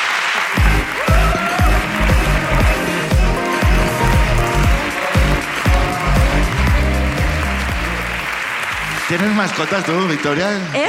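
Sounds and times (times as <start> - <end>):
audience applause: 0.0 - 10.8
rhythmic low thumping: 0.6 - 8.2
speech: 9.1 - 10.8.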